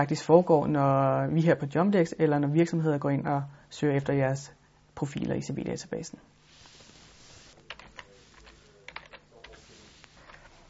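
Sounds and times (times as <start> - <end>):
speech: 0.0 - 6.3
faint steady hum: 0.0 - 10.6
typing on a computer keyboard: 7.6 - 9.6.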